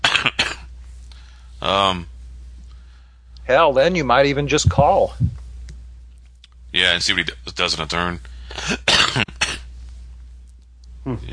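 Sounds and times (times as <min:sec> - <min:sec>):
person coughing: 0:00.0 - 0:00.7, 0:08.5 - 0:09.7
speech: 0:01.6 - 0:02.1, 0:03.5 - 0:05.4, 0:06.8 - 0:08.8, 0:11.1 - 0:11.3.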